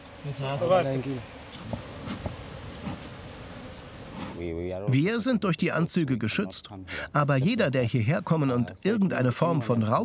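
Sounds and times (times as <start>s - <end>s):
honeybees buzzing around beekeepers' hives in a mangrove forest: 0.0s - 4.4s
speech: 0.2s - 2.2s, 4.4s - 10.0s.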